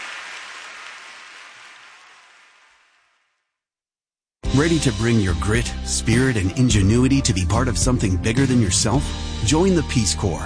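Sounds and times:
hands clapping: 0.0 - 2.9
speech: 4.6 - 10.4.

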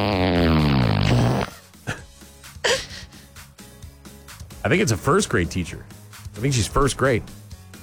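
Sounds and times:
fart sound effect: 0.0 - 2.0
speech: 4.7 - 7.4.

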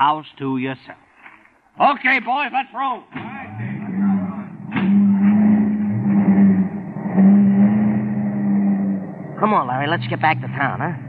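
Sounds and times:
speech: 0.0 - 1.0, 1.8 - 3.4, 9.4 - 11.0
sharp clunk: 3.1 - 3.4, 4.6 - 5.4
car engines droning as vehicles pull away: 3.1 - 11.0.

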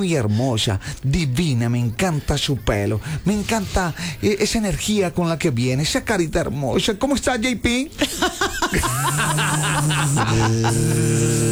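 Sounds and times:
speech: 0.0 - 11.5
person chuckling: 8.0 - 11.3
person imitating a mosquito's buzz with voice: 8.7 - 11.5.

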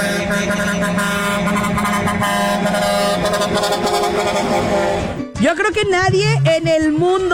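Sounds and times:
novelty musical car horn of a type used in Mexico: 0.0 - 5.4
speech: 5.4 - 7.3.

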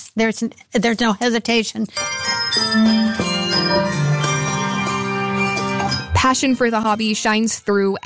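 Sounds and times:
speech: 0.2 - 4.0, 6.2 - 8.0
handbells ringing a slow melody: 2.0 - 7.4.

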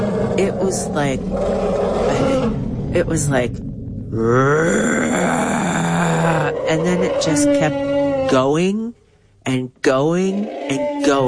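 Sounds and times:
elephant roaring: 0.0 - 3.1, 4.1 - 8.6, 10.3 - 11.2
speech: 0.4 - 5.6, 6.3 - 11.2.

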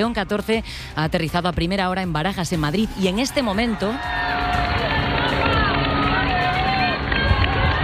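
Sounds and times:
speech: 0.0 - 4.7
live street crowd in Madrid roaring as the pope passes in the popemobile: 2.9 - 7.8.

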